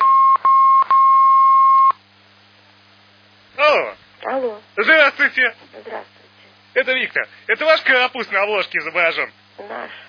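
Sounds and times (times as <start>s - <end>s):
electronic telephone tone as a call is connected: 0.0s - 2.0s
speech: 4.4s - 6.1s, 6.8s - 10.0s.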